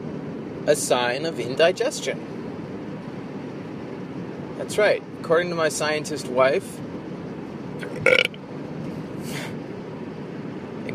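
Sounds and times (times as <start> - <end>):
speech: 0.7 - 2.4, 4.6 - 6.9
short rough burp: 8.0 - 8.4.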